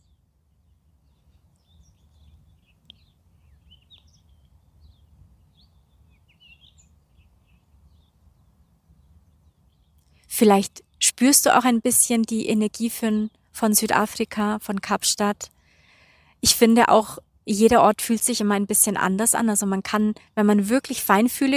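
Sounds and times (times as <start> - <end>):
low rumble of wind: 0.0 - 10.3
birds chirping and singing outdoors in Cape Town, South Africa: 1.1 - 8.1
speech: 10.4 - 15.6, 16.4 - 21.5.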